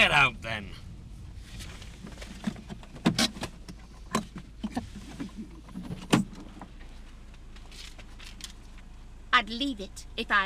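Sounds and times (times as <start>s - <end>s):
speech: 0.0s - 0.9s, 9.4s - 10.4s
low car engine rumble heard inside a car: 0.0s - 10.4s
passenger car door opening: 1.6s - 6.9s.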